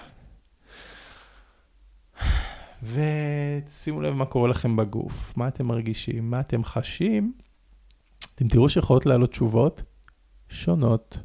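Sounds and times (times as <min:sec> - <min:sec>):
deep breath: 0:00.0 - 0:02.9
speech: 0:02.8 - 0:07.4, 0:08.4 - 0:09.9, 0:10.5 - 0:11.2.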